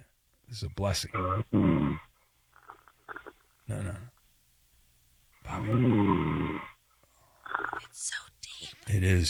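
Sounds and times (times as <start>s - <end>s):
speech: 0.5s - 2.1s, 3.7s - 4.2s, 5.5s - 6.6s, 7.9s - 9.2s
dog snoring while asleep: 1.1s - 4.1s, 5.4s - 6.8s, 7.4s - 8.0s.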